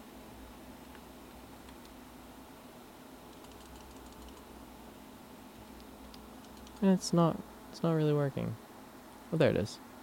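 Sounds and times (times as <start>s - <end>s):
steady low hum: 0.0s - 10.0s
soft typing on a computer keyboard: 3.3s - 4.5s, 6.0s - 6.8s
speech: 6.8s - 8.6s, 9.3s - 9.9s.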